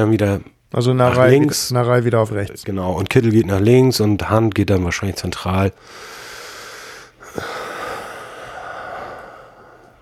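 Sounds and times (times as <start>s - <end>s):
speech: 0.0s - 6.2s, 7.4s - 7.6s
heavy breathing: 5.8s - 9.9s.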